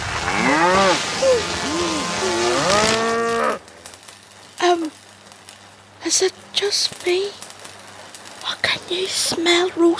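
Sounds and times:
several cows mooing loudly: 0.3s - 3.7s
speech: 6.2s - 7.4s, 8.9s - 9.9s.

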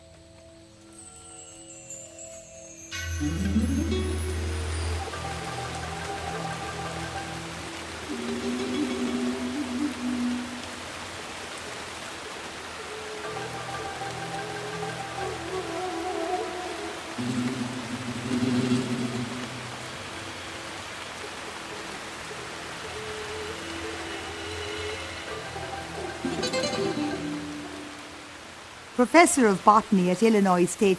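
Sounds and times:
low sustained musical tones: 0.0s - 29.0s
heavy rainforest rain: 0.0s - 30.9s
speech: 3.2s - 4.4s, 29.0s - 30.9s.

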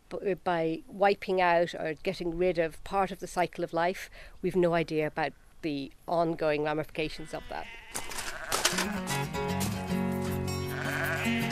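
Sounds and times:
speech: 0.1s - 8.0s, 8.7s - 9.4s
several sheep bleating: 7.1s - 9.2s, 10.6s - 11.5s.

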